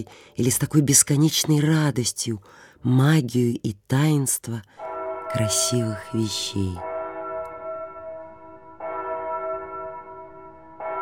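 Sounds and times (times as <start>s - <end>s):
speech: 0.0s - 6.9s
tower clock bell tolling to strike midnight: 4.7s - 11.0s.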